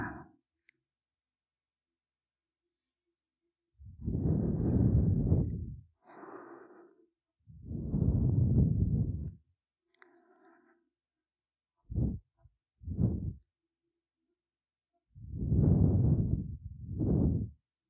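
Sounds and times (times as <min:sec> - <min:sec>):
soft warm breaths blown against the ear: 0:04.0 - 0:07.0, 0:07.6 - 0:09.4, 0:11.9 - 0:13.4, 0:15.2 - 0:17.6.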